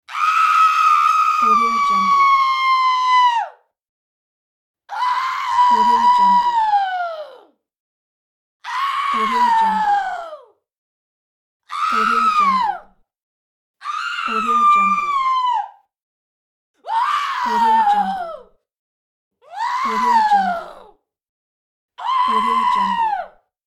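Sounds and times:
woman screaming: 0.0 - 3.6, 4.9 - 7.5, 8.6 - 10.5, 11.7 - 12.8, 13.8 - 15.8, 16.8 - 18.5, 19.4 - 20.9, 22.0 - 23.3.

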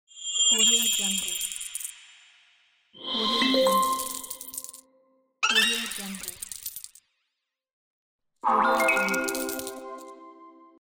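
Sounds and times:
game coin sounds: 0.6 - 1.9, 3.0 - 4.8, 5.4 - 7.0, 8.5 - 10.3.

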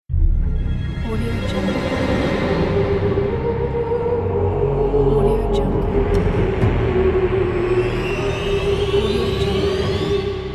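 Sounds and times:
dark orchestral vocal intro logo music: 0.1 - 10.5.

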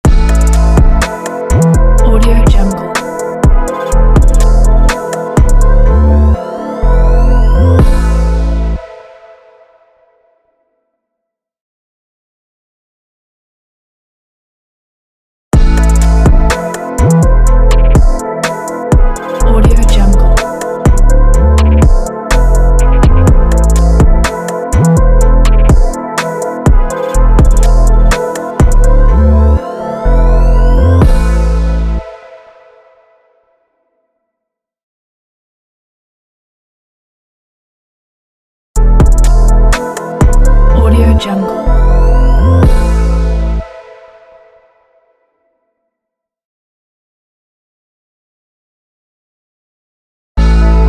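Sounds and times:
dark cold hip hop logo jingle: 0.1 - 8.9, 15.6 - 32.1, 38.8 - 43.6.

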